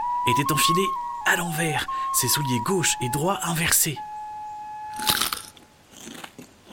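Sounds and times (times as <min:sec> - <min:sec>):
speech: 0:00.2 - 0:04.1
crunchy nibbling on a moss-stuffed pine cone: 0:05.0 - 0:06.7.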